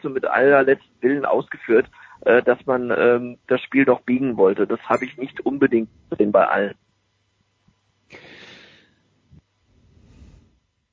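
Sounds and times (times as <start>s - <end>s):
speech: 0.0s - 6.8s
heavy breathing puffing through the nose: 1.9s - 2.2s, 8.1s - 9.0s.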